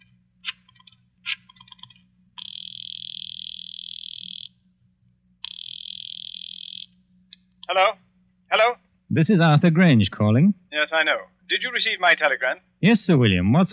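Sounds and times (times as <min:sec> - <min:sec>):
low hum: 0:00.0 - 0:13.7
telephone line clicks: 0:01.5 - 0:04.5, 0:05.4 - 0:07.7
telephone ringing down the line: 0:02.4 - 0:04.6, 0:05.4 - 0:07.0
speech: 0:07.7 - 0:13.7.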